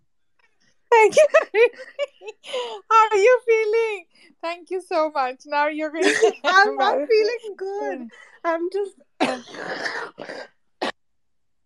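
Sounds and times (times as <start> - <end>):
speech: 1.0 - 10.5
raspy throat clearing: 9.2 - 11.0
sharp cough: 9.2 - 11.0.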